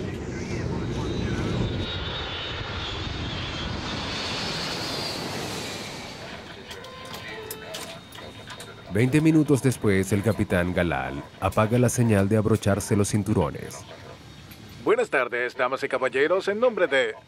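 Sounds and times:
passenger airliner engines roaring on takeoff on an evening flight to Egypt: 0.0s - 17.2s
speech: 8.9s - 14.0s, 14.8s - 17.2s.

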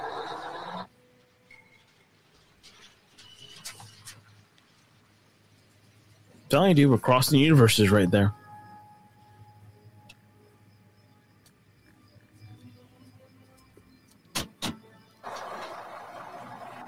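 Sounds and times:
speech: 6.5s - 8.4s
bus rumbling: 15.2s - 16.8s.

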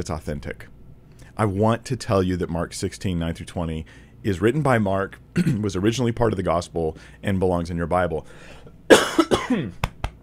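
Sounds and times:
speech: 0.0s - 9.9s
person coughing: 5.4s - 5.6s, 8.9s - 9.8s.

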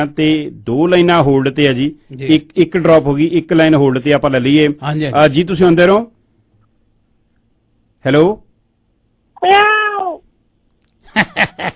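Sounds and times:
speech: 0.0s - 6.2s, 8.0s - 8.4s, 9.4s - 9.8s, 11.2s - 11.7s
cat meowing: 9.4s - 10.3s.

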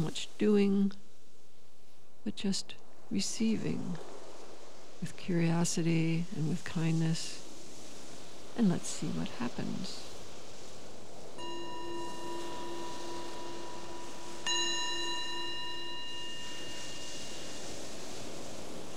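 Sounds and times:
speech: 0.0s - 1.0s, 2.2s - 4.2s, 5.0s - 7.4s, 8.6s - 10.0s
meditation bell ringing: 11.4s - 18.2s.

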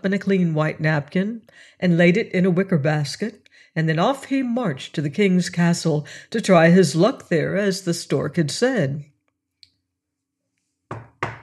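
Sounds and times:
speech: 0.0s - 9.1s
heavy knocks on a castle door: 10.9s - 11.4s.

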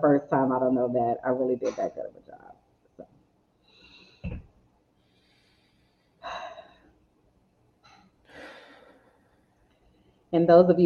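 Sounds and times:
speech: 0.0s - 2.3s, 10.3s - 10.8s
slow deep breathing during a guided relaxation exercise: 3.6s - 4.3s, 5.0s - 7.0s, 8.2s - 10.2s.

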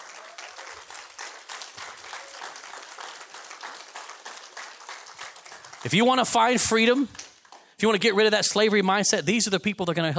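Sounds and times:
large crowd applauding group leaders: 0.0s - 8.0s
speech: 5.8s - 7.2s, 7.8s - 10.1s.

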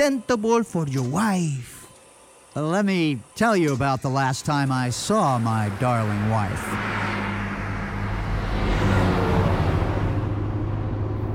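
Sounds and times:
speech: 0.0s - 1.8s, 2.6s - 7.0s
car driving past a villa: 4.9s - 11.3s.

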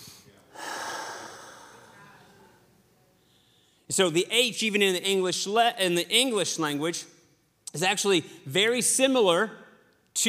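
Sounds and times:
person breathing in and out: 0.0s - 2.2s
speech: 3.9s - 7.1s, 7.7s - 9.6s.

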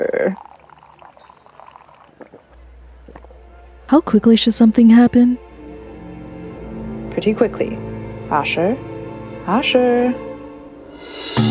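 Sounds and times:
speech: 0.0s - 0.5s, 3.9s - 5.4s, 7.2s - 8.9s, 9.5s - 10.3s
liquid poured into a person's mouth with gurgling splash: 0.0s - 3.3s.

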